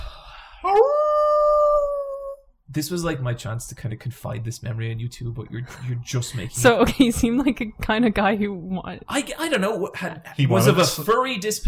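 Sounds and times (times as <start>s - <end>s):
person imitating a wolf howl: 0.6s - 2.4s
speech: 0.7s - 1.0s, 2.7s - 11.6s.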